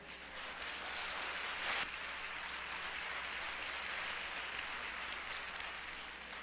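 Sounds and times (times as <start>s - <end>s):
audience applause: 0.0s - 6.4s.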